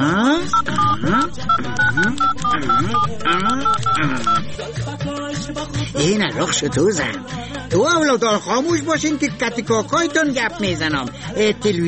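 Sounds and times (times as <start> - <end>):
speech: 0.0 - 11.8
telephone keypad tones while dialing: 0.4 - 4.5.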